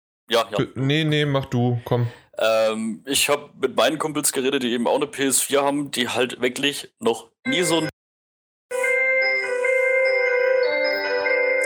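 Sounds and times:
speech: 0.3s - 7.9s
electronic doorbell chime playing bright tones: 8.7s - 11.6s.

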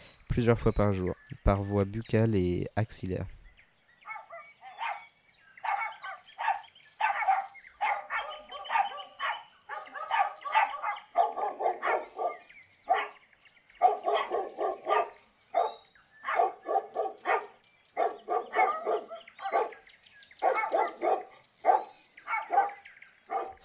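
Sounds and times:
speech: 0.4s - 3.4s
several dogs barking with higher yips and sharper barks: 4.0s - 13.2s, 13.8s - 23.6s.

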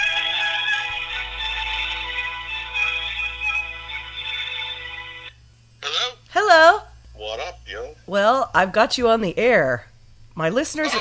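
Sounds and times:
phone ringback tone electronic melody while a call connects: 0.0s - 5.3s
low hum: 0.0s - 10.9s
speech: 8.1s - 10.9s.

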